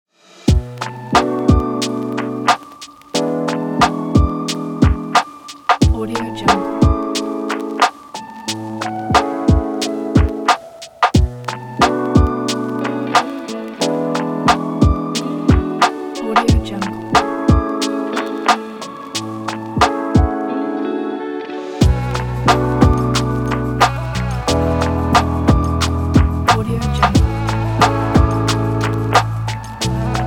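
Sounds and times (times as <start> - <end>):
chill lofi hip hop lounge beat: 0.5 - 30.2.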